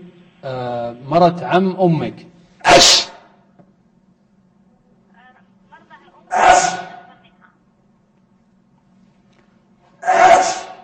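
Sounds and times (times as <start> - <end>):
faint low hum: 0.0 - 10.8
speech: 0.4 - 3.1
person sneezing: 2.6 - 3.3, 6.4 - 7.1, 10.0 - 10.8.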